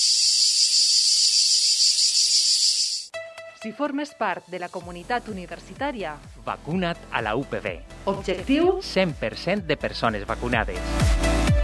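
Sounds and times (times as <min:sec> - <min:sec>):
cicada buzzing: 0:00.0 - 0:03.1
speech: 0:03.6 - 0:11.0.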